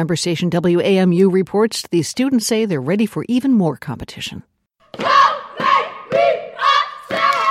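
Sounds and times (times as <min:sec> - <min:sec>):
speech: 0:00.0 - 0:04.5
step team stomping: 0:04.8 - 0:07.4
middle school step team shouting in unison in school hallways: 0:04.9 - 0:07.4
step team clapping: 0:07.0 - 0:07.4.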